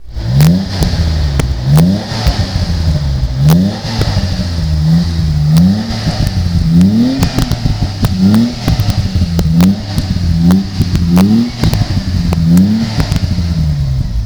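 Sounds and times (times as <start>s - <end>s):
BMW E21 323 2.8l car engine: 0.0s - 14.2s.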